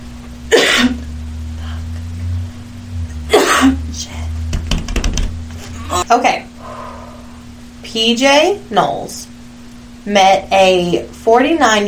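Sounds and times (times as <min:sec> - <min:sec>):
steady low hum: 0:00.0 - 0:11.4
person coughing: 0:00.5 - 0:01.0, 0:03.3 - 0:03.8
speech: 0:06.1 - 0:06.5, 0:07.9 - 0:09.3, 0:10.0 - 0:11.8.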